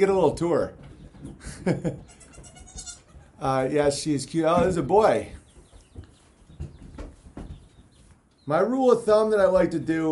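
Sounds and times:
speech: 0.0 - 2.2, 3.4 - 5.4, 8.5 - 10.1
baby goat bleating: 2.0 - 3.4.

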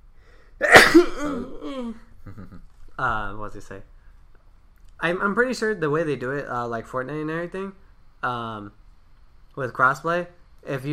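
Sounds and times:
breathy exhale: 0.2 - 0.6
person sneezing: 0.6 - 2.0
speech: 0.6 - 4.0, 5.0 - 8.8, 9.6 - 10.9.

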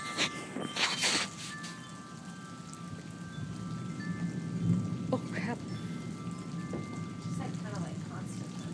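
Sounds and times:
heavy rain pouring down: 0.0 - 8.7.

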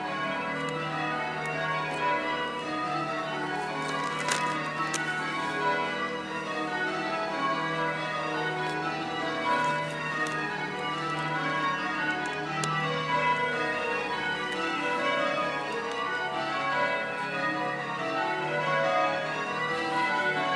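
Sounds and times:
church bells ringing: 0.0 - 20.5
street ambience: 0.0 - 20.5
gardening sounds: 0.3 - 6.9, 7.8 - 15.0.

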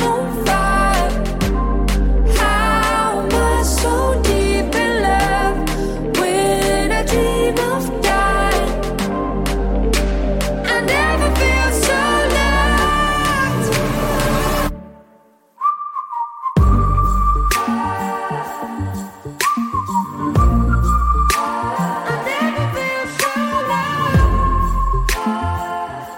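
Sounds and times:
full band with pulsing low beats: 0.0 - 14.8, 16.6 - 19.2, 20.1 - 21.8, 24.2 - 25.6
whistling solo in a song: 15.6 - 26.1.

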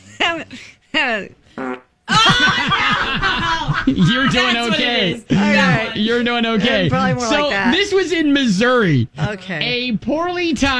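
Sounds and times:
speech: 0.3 - 1.7, 2.4 - 10.7
person imitating loud farts with their mouth: 1.6 - 1.9
laughter: 2.1 - 7.0.

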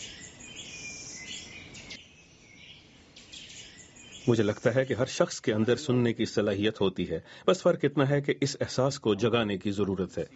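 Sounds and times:
small bird singing: 0.0 - 5.8
speech: 4.3 - 10.3.

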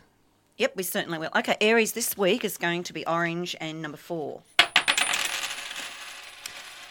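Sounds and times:
speech: 0.6 - 4.5
I Ching coins tossed and landing: 4.6 - 6.8.

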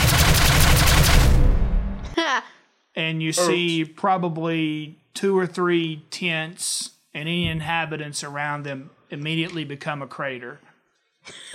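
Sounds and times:
starship weapons turret shot with deep low rumble: 0.0 - 2.1
speech: 2.4 - 11.5.

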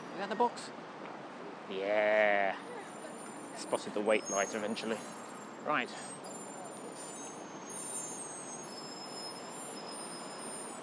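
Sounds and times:
bus interior engine rumble: 0.0 - 10.8
speech: 0.2 - 0.8, 1.7 - 2.8, 3.6 - 6.2
thin high-pitched squeaks and whines of a bus: 2.8 - 10.8.

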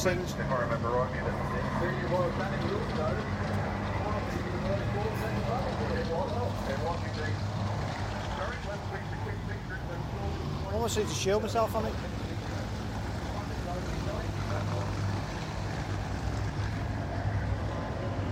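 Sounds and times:
speech: 0.0 - 3.7, 4.7 - 7.8, 8.4 - 12.2
race car with straight-through exhaust and no silencer roaring during a burnout: 0.0 - 18.3.

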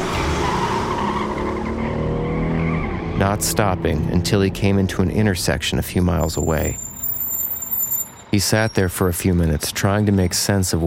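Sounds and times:
car accelerating hard: 0.0 - 5.6
car tires squealing: 0.0 - 10.8
speech: 3.2 - 6.9, 8.4 - 10.8.

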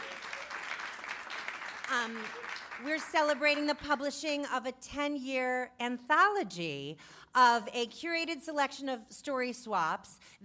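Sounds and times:
audience applause at a literary evening: 0.0 - 3.4
speech: 1.9 - 10.4.

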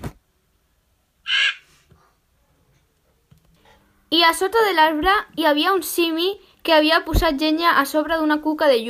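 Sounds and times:
crow cawing in a tree: 1.3 - 1.7
speech: 4.1 - 8.8.

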